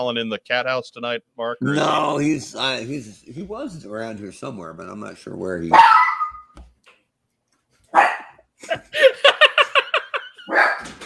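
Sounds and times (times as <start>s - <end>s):
speech: 0.0s - 6.0s
dog barking: 5.7s - 6.5s, 7.9s - 8.4s, 10.5s - 11.0s
laughter: 8.6s - 10.6s.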